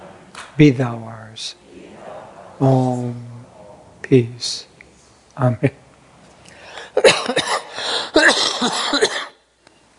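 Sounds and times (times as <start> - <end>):
speech: 0.6 - 1.6, 2.6 - 3.3, 4.1 - 4.7, 5.4 - 5.8, 8.2 - 9.3
person coughing with rough phlegmy hacking: 7.0 - 9.4.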